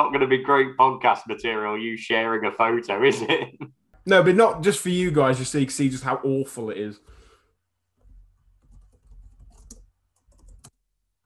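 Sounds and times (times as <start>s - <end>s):
speech: 0.0s - 7.2s
man typing on a computer keyboard: 8.5s - 10.8s.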